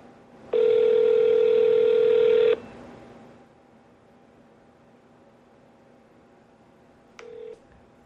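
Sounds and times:
phone call to an ice cream shop ringing through the receiver: 0.5 - 2.6, 7.2 - 7.6.

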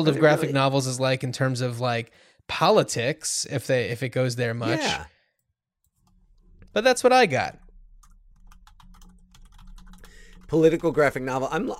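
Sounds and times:
speech: 0.0 - 5.1, 6.8 - 7.6, 10.5 - 11.7
typing on a computer keyboard: 8.0 - 11.7.

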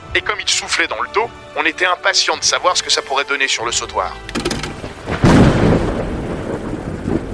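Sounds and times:
speech: 0.2 - 4.4
steady rain: 0.8 - 7.3
storm noise: 4.3 - 7.3
thunderclap: 4.4 - 7.3.

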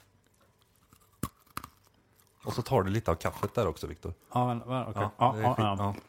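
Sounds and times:
crunchy bites into homemade toffee cookies: 0.6 - 2.5
speech: 2.4 - 6.0.

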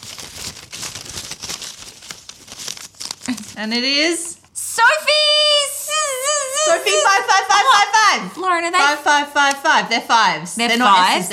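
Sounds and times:
paper slips shaken inside a fake straw cowboy hat to draw a winner: 0.0 - 3.7
speech: 3.6 - 5.5, 6.7 - 11.3.

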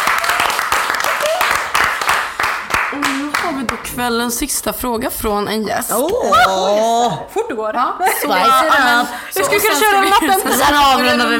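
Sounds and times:
people whooping: 0.0 - 1.8
small crowd clapping: 0.0 - 4.0
speech: 3.5 - 11.3.

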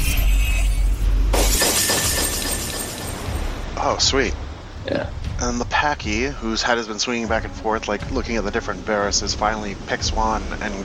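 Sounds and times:
glass fragments tinkling: 0.0 - 3.5
glass shattering: 0.0 - 3.6
deep rumble: 3.3 - 10.8
speech: 3.9 - 10.8.

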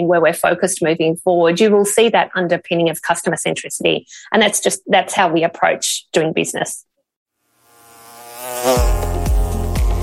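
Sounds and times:
speech: 0.0 - 6.9, 8.5 - 9.0
bees buzzing: 7.5 - 10.0.

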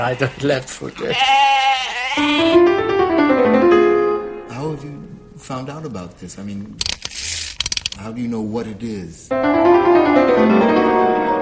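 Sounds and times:
speech: 0.0 - 1.6, 2.2 - 3.6, 5.5 - 7.3, 8.0 - 11.0
sheep bleating: 0.0 - 2.6.

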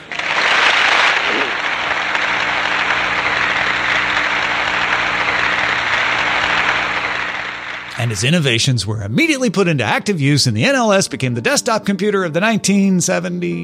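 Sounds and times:
large audience applauding in a standing ovation: 0.0 - 8.7
speech: 8.1 - 13.6.

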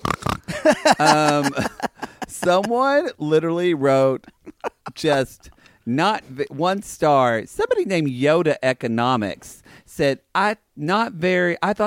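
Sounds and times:
person imitating a pig with snorting grunts and nasal squeal: 0.0 - 1.6
laughter: 0.5 - 3.2, 3.9 - 5.5
speech: 0.6 - 1.7, 2.4 - 11.8.

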